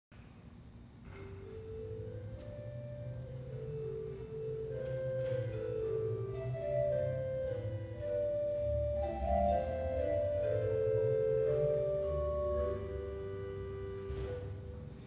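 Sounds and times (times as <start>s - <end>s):
pipe organ playing a Holzgedacht 8' stop: 1.2s - 15.0s.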